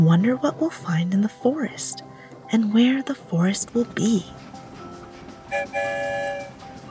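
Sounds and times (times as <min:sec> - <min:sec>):
speech: 0:00.0 - 0:04.6, 0:05.5 - 0:06.6
train whistle blowing: 0:05.5 - 0:06.7.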